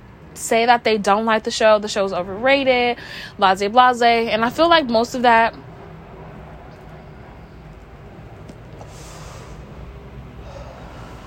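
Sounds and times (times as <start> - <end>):
speech: 0.4 - 5.7
airplane flying low overhead: 4.3 - 11.2.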